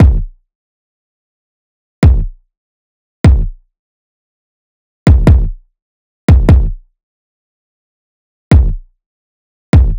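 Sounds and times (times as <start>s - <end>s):
kick drum loop at 148: 0.0s - 0.3s, 2.0s - 2.4s, 3.2s - 3.6s, 5.1s - 5.6s, 6.3s - 6.8s, 8.5s - 8.8s, 9.8s - 9.9s.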